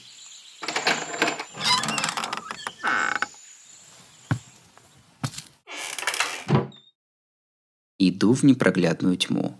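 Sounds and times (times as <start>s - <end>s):
door swinging open with scrape ending in a dull thunk: 0.6s - 3.3s
speech: 8.0s - 9.5s.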